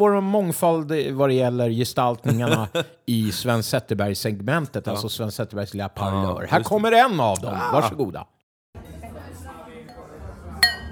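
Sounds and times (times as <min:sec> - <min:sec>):
speech: 0:00.0 - 0:08.4
laughter: 0:02.2 - 0:03.5
murmur of crowd voices and chatter: 0:08.8 - 0:10.8
glasses clinking in a toast: 0:10.6 - 0:10.8.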